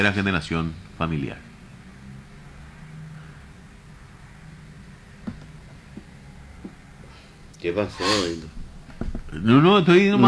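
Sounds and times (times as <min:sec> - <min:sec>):
speech: 0:00.0 - 0:01.5, 0:07.6 - 0:08.6, 0:09.3 - 0:10.2
traffic rumble of cars and buses: 0:00.0 - 0:10.0
soft knocks: 0:05.2 - 0:06.8, 0:08.8 - 0:09.3.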